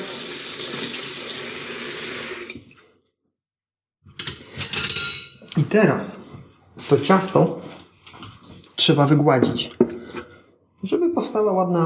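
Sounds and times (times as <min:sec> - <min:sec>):
water pouring from a tap into a sink: 0:00.0 - 0:02.9
speech: 0:05.6 - 0:06.2, 0:06.9 - 0:07.8, 0:08.8 - 0:09.9, 0:10.8 - 0:11.8.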